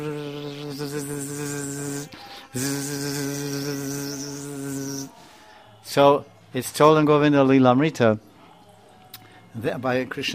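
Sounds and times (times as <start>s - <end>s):
bees buzzing around fresh flowers: 0.0s - 5.2s
speech: 0.8s - 1.6s, 2.5s - 3.2s, 6.0s - 8.3s, 9.6s - 10.3s.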